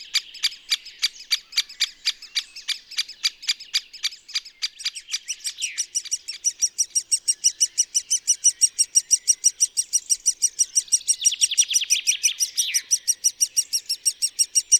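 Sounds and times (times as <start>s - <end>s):
bird chirping: 0.0s - 14.7s
Great spotted woodpecker calling with sharp high ticking notes: 0.1s - 14.7s.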